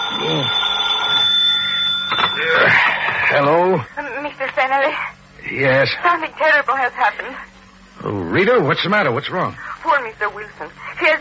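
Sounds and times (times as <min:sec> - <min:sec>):
telephone ringing with shrill electronic trill: 0:00.0 - 0:03.4
speech: 0:03.3 - 0:04.0, 0:04.6 - 0:11.1.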